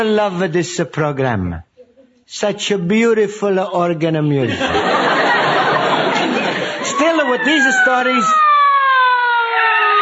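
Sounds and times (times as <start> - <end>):
speech: 0.0 - 1.7, 2.3 - 5.1, 7.4 - 8.5
laughter: 4.4 - 7.9
emergency siren wailing: 6.4 - 10.0.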